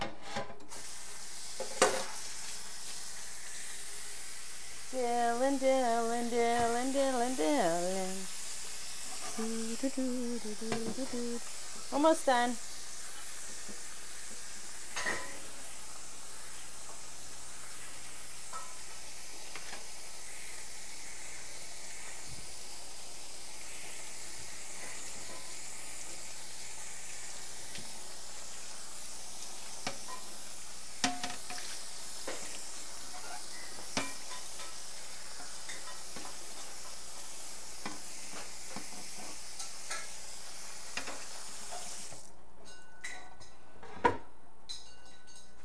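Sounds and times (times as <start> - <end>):
food sizzling in a saucepan while being stirred: 0.7 - 43.2
speech: 12.0 - 12.7.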